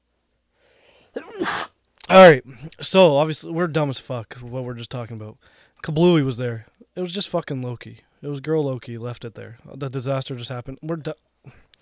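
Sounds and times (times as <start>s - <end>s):
sneeze: 1.1s - 1.8s
speech: 1.4s - 11.7s.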